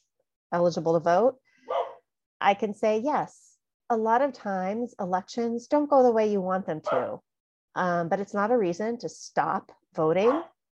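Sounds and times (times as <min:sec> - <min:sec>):
speech: 0:00.5 - 0:01.4, 0:02.4 - 0:10.5
female dog barking: 0:01.6 - 0:02.0, 0:06.9 - 0:07.2, 0:10.2 - 0:10.6.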